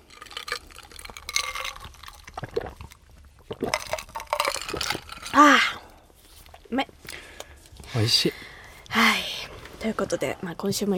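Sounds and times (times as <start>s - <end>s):
person gulping rice shochu after a toast: 0.0s - 6.1s
rice shochu sloshing in a glass: 0.0s - 6.3s
speech: 5.4s - 5.8s, 6.7s - 6.9s, 8.0s - 9.1s, 9.8s - 10.9s.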